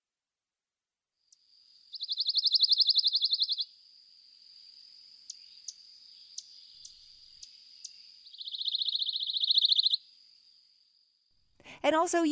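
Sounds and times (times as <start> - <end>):
thin steady insect-like hum: 1.2 - 11.3
pine warbler singing: 1.9 - 3.6, 7.8 - 10.0
speech: 11.8 - 12.3.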